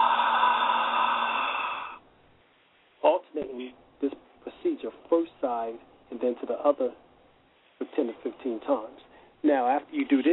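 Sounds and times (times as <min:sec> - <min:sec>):
forceful yoga exhale through the mouth with a ha sound: 0:00.0 - 0:02.0
speech: 0:03.0 - 0:07.0, 0:07.8 - 0:10.3.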